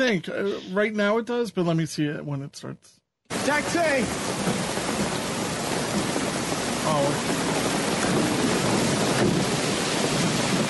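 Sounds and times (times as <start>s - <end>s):
speech: 0.0s - 4.8s, 6.9s - 8.3s
heavy pouring rain: 3.3s - 10.6s.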